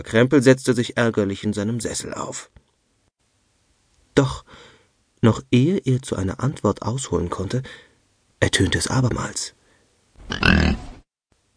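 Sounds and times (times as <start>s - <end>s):
speech: 0.0s - 2.7s, 4.2s - 9.6s, 10.3s - 10.9s
loud piercing pig grunt: 10.3s - 11.0s.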